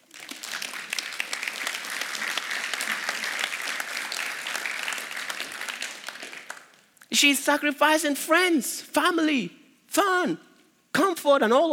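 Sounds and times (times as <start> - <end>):
congregation applauding: 0.0 - 7.0
speech: 7.1 - 10.5, 11.2 - 11.7.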